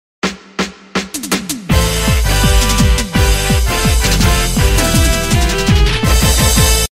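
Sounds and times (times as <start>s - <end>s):
organ greeting music for an MC: 1.7s - 6.9s.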